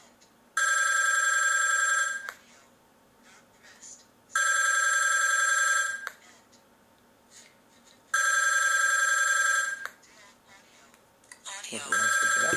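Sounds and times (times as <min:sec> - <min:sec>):
phone ringing on speakerphone during a call test: 0:00.6 - 0:02.3, 0:04.4 - 0:06.0, 0:08.2 - 0:09.8, 0:11.8 - 0:12.5.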